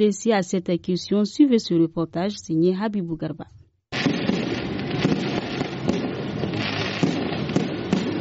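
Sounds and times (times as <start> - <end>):
speech: 0.0 - 3.6
firecrackers and fireworks exploding in streets of Niamey: 3.9 - 8.1.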